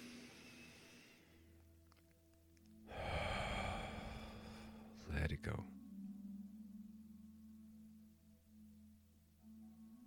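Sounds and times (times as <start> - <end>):
deep breathing through the nose for a guided meditation: 0.0 - 1.6, 2.8 - 5.1
speech: 5.1 - 5.8.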